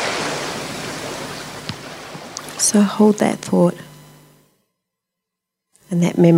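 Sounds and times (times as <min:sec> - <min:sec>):
ocean surf washing: 0:00.0 - 0:03.0
speech: 0:02.6 - 0:03.9, 0:05.9 - 0:06.3.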